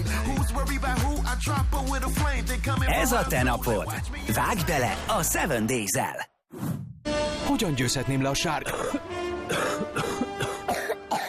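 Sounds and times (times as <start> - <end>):
speech: 0.6 - 6.7, 7.5 - 9.7
chesty productive coughing: 8.6 - 11.2.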